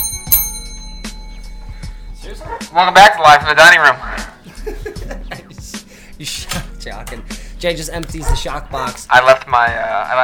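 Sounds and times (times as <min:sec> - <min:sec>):
bell strike: 0:00.0 - 0:02.6
speech: 0:02.4 - 0:04.1, 0:06.2 - 0:10.2
laughter: 0:04.3 - 0:05.9.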